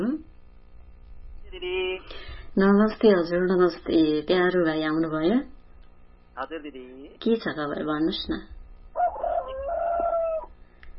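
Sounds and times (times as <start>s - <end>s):
speech: 2.6s - 5.6s, 6.4s - 8.6s
rooster crowing: 8.9s - 10.6s.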